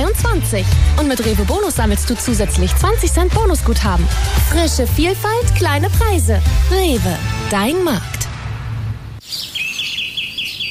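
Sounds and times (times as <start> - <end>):
speech: 0.2 - 8.3
low rumble: 1.8 - 9.2
birds chirping: 9.2 - 10.6.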